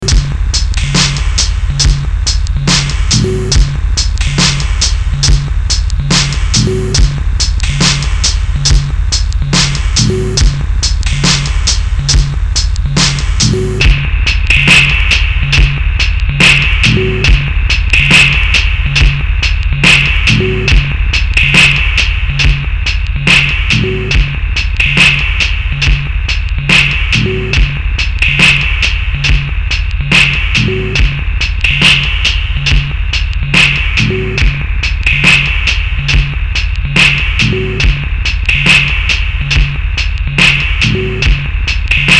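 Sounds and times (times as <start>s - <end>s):
MPC2000 bleepy drum machine beat: 0.0s - 42.1s.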